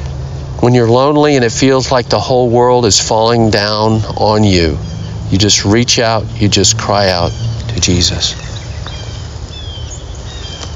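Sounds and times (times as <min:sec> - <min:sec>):
birdsong during a sunrise walk: 0:00.0 - 0:10.7
speech: 0:00.6 - 0:08.4.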